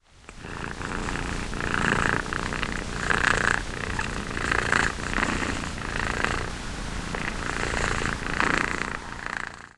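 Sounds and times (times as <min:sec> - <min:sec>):
cat purring: 0:00.2 - 0:09.7.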